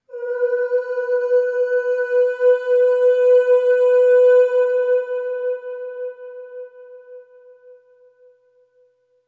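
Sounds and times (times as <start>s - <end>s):
voice singing long ooh on B3 with long reverb: 0.0s - 6.5s.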